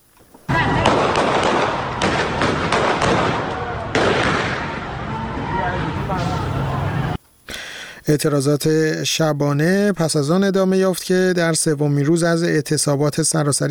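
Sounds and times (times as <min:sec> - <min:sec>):
sharp gunshot-like cracks: 0:00.5 - 0:04.9
crowd voices and commotion: 0:00.5 - 0:07.2
speech: 0:08.1 - 0:13.6.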